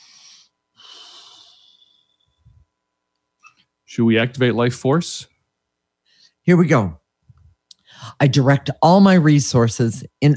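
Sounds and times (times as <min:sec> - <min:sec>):
deep breath taken during a spoken energy exercise: 0:00.0 - 0:02.6, 0:07.8 - 0:08.2
speech: 0:03.9 - 0:05.3, 0:06.4 - 0:07.0, 0:08.0 - 0:10.3.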